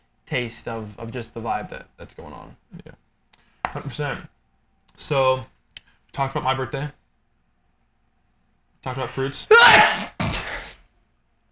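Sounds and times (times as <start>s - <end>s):
speech: 0.3s - 3.0s, 3.7s - 4.3s, 5.0s - 7.0s, 8.8s - 10.2s
loud sneeze: 9.5s - 10.9s.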